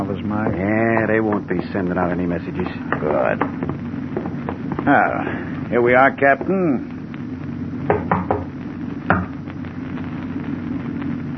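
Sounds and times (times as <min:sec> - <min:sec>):
low steady hum: 0:00.0 - 0:11.3
speech: 0:00.1 - 0:04.0, 0:04.8 - 0:06.9
knocking on a locked door: 0:07.9 - 0:08.5.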